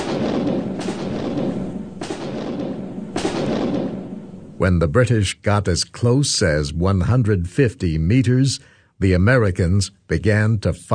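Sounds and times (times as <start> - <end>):
artillery cannon firing in battle: 0.0 - 4.6
continuous low rumble: 0.0 - 4.7
speech: 4.6 - 10.9.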